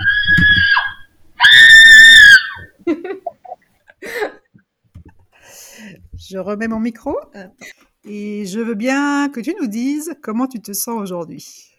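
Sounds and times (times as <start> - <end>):
shorter high-pitched yelps and vocal bursts: 0.0 - 2.7
long piercing shrill screams: 0.0 - 2.8
speech: 6.3 - 11.7.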